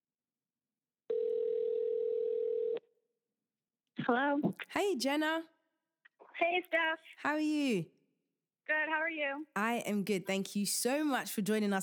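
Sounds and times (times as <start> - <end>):
telephone ringing tone on an outgoing call: 1.1 - 2.9
speech: 4.0 - 5.6, 6.4 - 8.0, 8.7 - 11.8.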